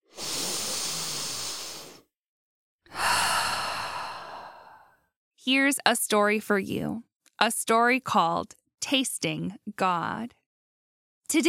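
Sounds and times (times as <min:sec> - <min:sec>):
deep breaths: 0:00.0 - 0:02.1, 0:02.9 - 0:05.1
speech: 0:05.4 - 0:10.4, 0:11.3 - 0:11.4.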